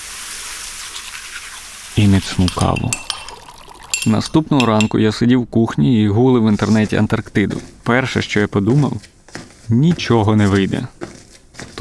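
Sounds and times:
shower spraying water in a hissing rush: 0:00.0 - 0:04.4
speech: 0:02.0 - 0:03.1, 0:04.0 - 0:11.0.

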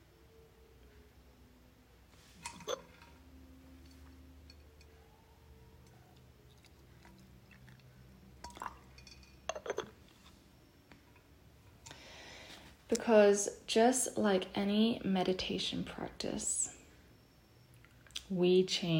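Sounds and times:
soft ceramic clinks: 0:02.4 - 0:05.0, 0:08.4 - 0:10.0
faint liquid drips: 0:05.8 - 0:09.9
tea pouring into a bowl: 0:06.4 - 0:10.0
speech: 0:12.9 - 0:16.7, 0:18.3 - 0:18.9.

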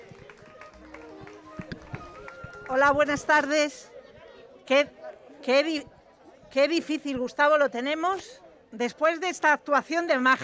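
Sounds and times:
audience clapping: 0:00.0 - 0:03.7
murmuring voices: 0:00.0 - 0:06.6
speech: 0:02.7 - 0:03.9, 0:04.7 - 0:05.9, 0:06.5 - 0:10.4.

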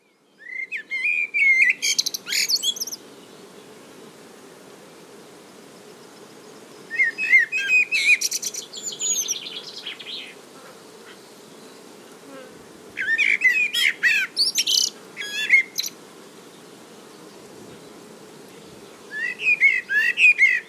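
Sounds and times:
blackbird singing liquid fluting notes: 0:00.4 - 0:03.0, 0:06.9 - 0:10.4, 0:13.0 - 0:15.9, 0:19.1 - 0:20.6.

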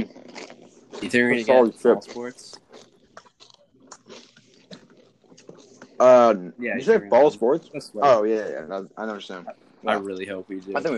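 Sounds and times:
crunching and chewing of chips with cheese: 0:00.0 - 0:06.2
voice: 0:01.0 - 0:02.5, 0:06.0 - 0:10.9
speech: 0:01.0 - 0:02.6, 0:06.0 - 0:10.9.

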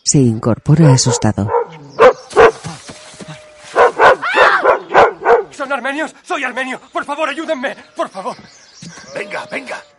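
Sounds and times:
speech: 0:00.1 - 0:01.7, 0:05.7 - 0:09.9
dog barking and yipping while being petted: 0:00.9 - 0:02.6, 0:03.8 - 0:05.6.

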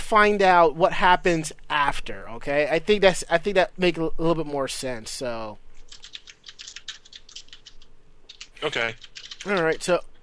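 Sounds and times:
speech: 0:00.1 - 0:05.6, 0:08.6 - 0:10.1
typing on a computer keyboard: 0:05.9 - 0:09.8.

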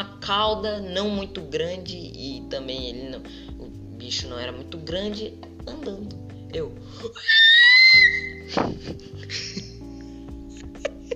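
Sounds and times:
speech: 0:00.0 - 0:09.8
voice imitating a panicked scream: 0:07.2 - 0:08.3.

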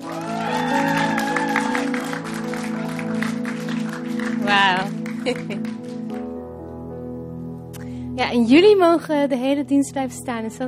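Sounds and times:
crowd clapping and cheering: 0:00.0 - 0:06.3
speech: 0:04.5 - 0:05.8, 0:08.2 - 0:10.6.

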